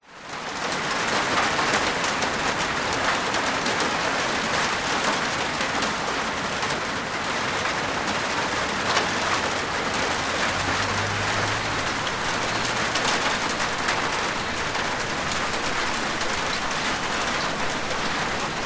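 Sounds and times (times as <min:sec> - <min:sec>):
medium heavy rain with large drops on a plastic veranda roof: 0:00.0 - 0:18.6
light distant traffic: 0:07.8 - 0:18.6.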